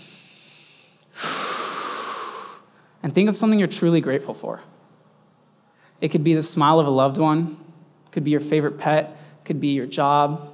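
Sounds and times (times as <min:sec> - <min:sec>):
deep breath in: 0:00.0 - 0:03.0
speech: 0:03.0 - 0:04.8, 0:06.0 - 0:10.5.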